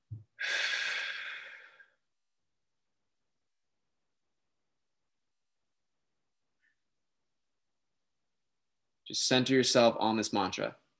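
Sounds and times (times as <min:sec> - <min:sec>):
person taking a deep breath during meditation: 0:00.4 - 0:02.0
speech: 0:09.1 - 0:10.8.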